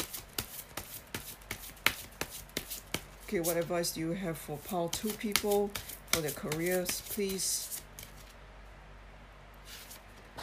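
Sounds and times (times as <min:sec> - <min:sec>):
deck of tarot cards being shuffled: 0:00.0 - 0:03.7, 0:04.6 - 0:08.4
speech: 0:03.3 - 0:07.7.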